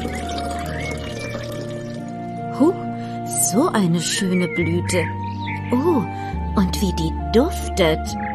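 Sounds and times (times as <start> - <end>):
water poured onto a flowering plant: 0.0 - 2.3
speech: 2.6 - 2.8, 3.5 - 8.2.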